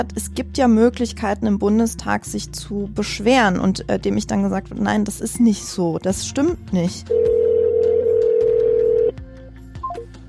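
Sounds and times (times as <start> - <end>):
speech: 0.0 - 7.4
ringback tone of an unanswered telephone call to a counselling number: 7.1 - 9.1.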